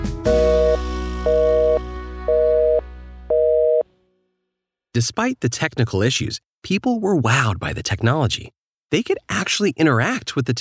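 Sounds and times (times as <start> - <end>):
telephone busy signal: 0.3 - 3.8
speech: 5.0 - 10.6.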